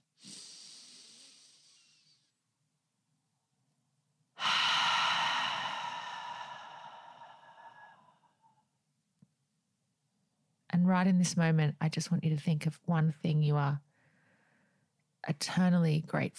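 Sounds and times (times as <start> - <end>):
deep breath in through the nose: 0.2 - 2.3, 4.4 - 8.1
deep breath out through the mouth: 0.2 - 2.3, 4.4 - 8.1
speech: 10.9 - 13.9, 15.2 - 16.3.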